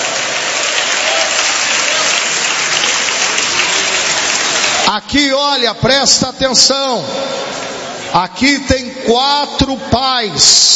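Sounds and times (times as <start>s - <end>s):
crowd applauding: 0.0s - 5.0s
speech: 5.0s - 10.7s.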